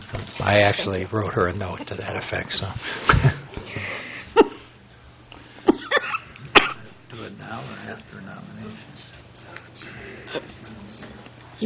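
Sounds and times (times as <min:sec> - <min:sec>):
speech: 0:00.5 - 0:03.4
person coughing short sharp coughs: 0:05.7 - 0:06.9.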